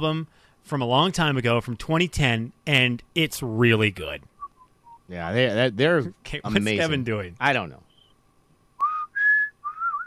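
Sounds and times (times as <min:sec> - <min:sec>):
speech: 0:00.0 - 0:04.3, 0:05.1 - 0:07.8
person whistling a Christmas tune: 0:08.8 - 0:10.0.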